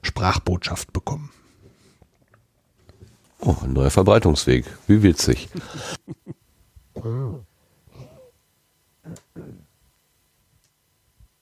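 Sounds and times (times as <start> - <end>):
speech: 0.2 - 1.4, 3.4 - 6.4, 7.0 - 7.5
nose blowing: 7.0 - 8.4.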